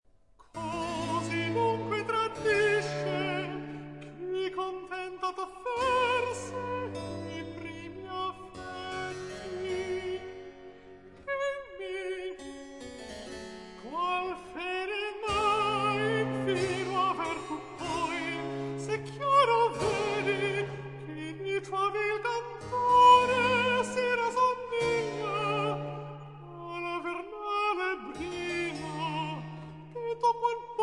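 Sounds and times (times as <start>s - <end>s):
alto solo singing a cantata recitative: 0.6s - 12.6s, 13.8s - 30.8s.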